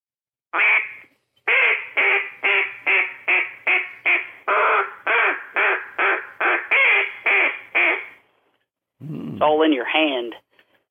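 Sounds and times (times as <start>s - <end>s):
hand-held duck call quacking like multiple birds: 0.6s - 8.2s
speech: 9.4s - 10.4s.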